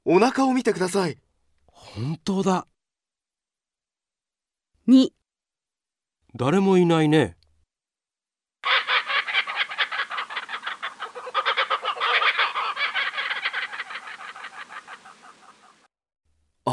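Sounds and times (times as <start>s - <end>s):
speech: 0.1s - 2.7s, 4.9s - 5.2s, 6.3s - 7.4s
bird calling in harsh rapidly pulsed cackling notes: 8.6s - 15.9s.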